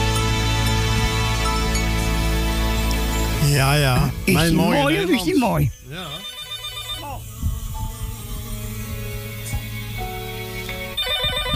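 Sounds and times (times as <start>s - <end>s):
sustained music: 0.0s - 11.5s
speech: 3.6s - 6.3s
telephone ringing with electronic trills: 4.3s - 7.0s, 10.9s - 11.5s.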